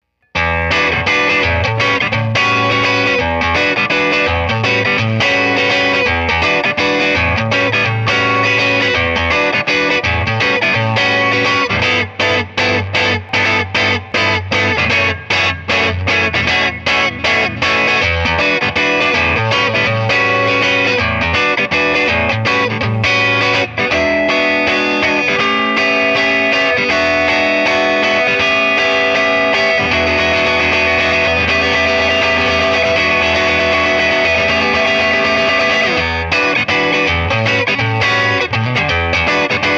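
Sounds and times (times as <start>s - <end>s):
electric guitar on neck pickup with bright tone: 0.2s - 39.7s.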